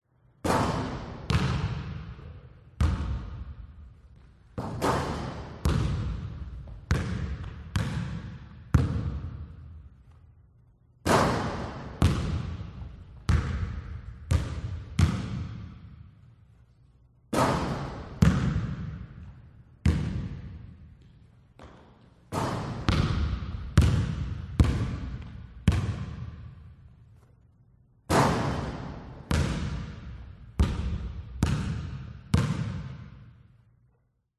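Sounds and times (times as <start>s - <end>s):
basketball shot in an empty school gymnasium: 0.4s - 3.7s, 4.6s - 9.6s, 11.0s - 16.1s, 17.3s - 20.7s, 21.6s - 26.5s, 28.1s - 33.3s
basketball bouncing in an empty school gymnasium: 0.4s - 10.3s, 11.0s - 16.3s, 17.3s - 27.0s, 28.1s - 33.5s.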